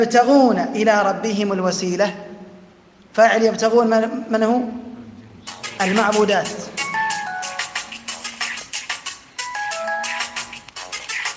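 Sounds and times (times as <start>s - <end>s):
speech: 0.0s - 2.3s, 3.2s - 4.8s, 5.4s - 6.7s
mobile phone ringtone with bright repeating electronic melody: 6.8s - 8.6s, 9.4s - 10.7s.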